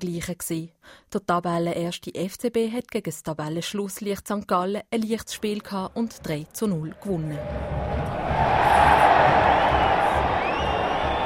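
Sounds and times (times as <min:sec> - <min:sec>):
speech: 0:00.0 - 0:09.4
football stadium crowd of about 26,500 spectators roaring and cheering: 0:07.3 - 0:11.2
shouts: 0:08.3 - 0:11.2
whistles: 0:08.7 - 0:11.2.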